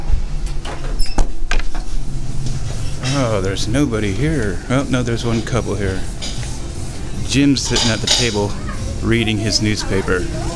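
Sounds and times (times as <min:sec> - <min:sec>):
door opening: 0:00.4 - 0:03.4
speech: 0:03.2 - 0:06.2, 0:07.3 - 0:10.5.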